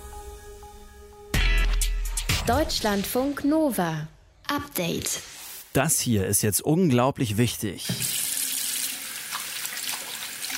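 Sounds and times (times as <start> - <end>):
speech: 2.4 - 8.2
water running from a tap while hands are washed: 7.8 - 10.5.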